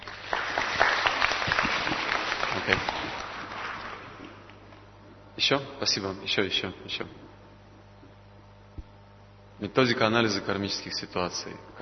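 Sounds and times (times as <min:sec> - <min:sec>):
audience clapping: 0:00.0 - 0:04.8
speech: 0:02.7 - 0:02.9, 0:05.5 - 0:07.3, 0:09.6 - 0:11.8.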